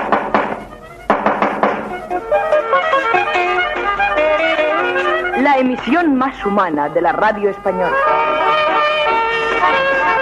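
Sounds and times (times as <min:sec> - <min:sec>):
firm knocking on a door: 0:00.0 - 0:02.0
brassy musical fanfare: 0:00.7 - 0:05.9, 0:07.7 - 0:10.2
speech: 0:05.5 - 0:08.2.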